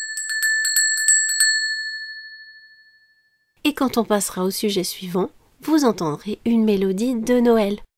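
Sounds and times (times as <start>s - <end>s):
small bell chiming: 0.0s - 3.5s
speech: 3.6s - 7.8s.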